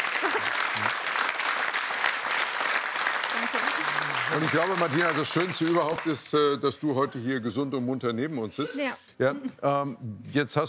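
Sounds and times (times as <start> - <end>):
large audience applause: 0.0 - 6.5
speech: 4.3 - 10.6.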